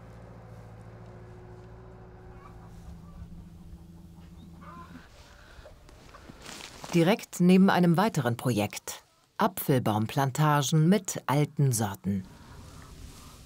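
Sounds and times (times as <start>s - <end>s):
steady low engine drone: 0.0s - 6.8s
rough outdoor rumble: 0.0s - 7.0s, 12.2s - 13.4s
chickens clucking in a mobile coop on a farm: 2.2s - 6.3s
speech: 6.9s - 12.4s.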